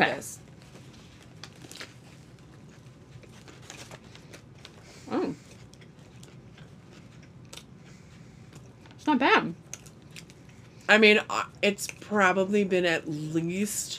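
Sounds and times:
speech: 0:00.0 - 0:00.4, 0:09.1 - 0:09.6, 0:10.9 - 0:13.9
people biting and chewing burgers: 0:00.5 - 0:10.9.

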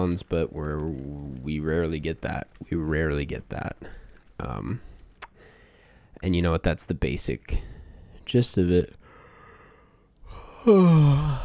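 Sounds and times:
speech: 0:00.0 - 0:04.9, 0:06.2 - 0:09.0, 0:10.3 - 0:11.4
yawn with breathy inhale and voiced groan: 0:10.2 - 0:11.4.

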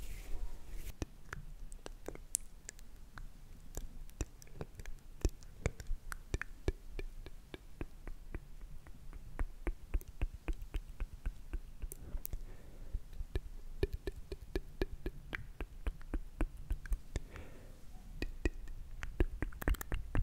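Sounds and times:
quiet low hush of noise: 0:00.0 - 0:19.6
soft wet mouth clicks and smacks: 0:01.0 - 0:12.4, 0:13.1 - 0:17.4, 0:18.2 - 0:20.2
faint whisper-like breath: 0:17.2 - 0:18.0.

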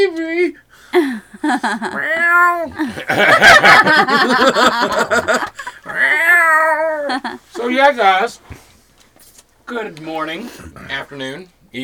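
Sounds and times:
people laughing: 0:01.0 - 0:07.8
speech: 0:01.5 - 0:05.5, 0:07.8 - 0:08.4, 0:09.7 - 0:11.8
cat hiding under a blanket meowing: 0:01.8 - 0:03.0, 0:05.9 - 0:07.4.

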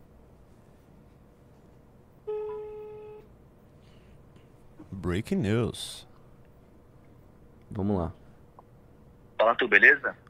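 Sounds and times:
phone sounding for an incoming call: 0:02.3 - 0:03.2
speech: 0:05.0 - 0:06.1, 0:07.7 - 0:08.2, 0:09.4 - 0:10.2.

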